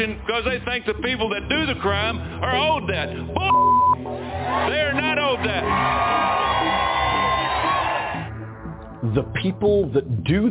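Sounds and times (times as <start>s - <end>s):
speech: 0.0s - 6.8s, 9.0s - 10.4s
large crowd cheering at a political speech: 4.0s - 8.4s
people shouting in a crowd: 4.2s - 8.3s.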